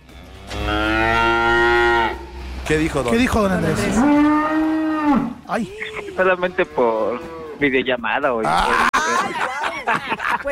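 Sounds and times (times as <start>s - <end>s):
cow mooing in a long low call: 0.0s - 2.5s, 3.7s - 5.5s, 6.3s - 7.7s
speech: 2.7s - 10.5s
laughter: 8.5s - 10.5s.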